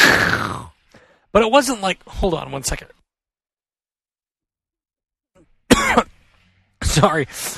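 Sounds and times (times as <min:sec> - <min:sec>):
faint breath: 0:00.9 - 0:01.3
speech: 0:01.3 - 0:03.0, 0:06.8 - 0:07.5
person coughing: 0:05.7 - 0:06.2.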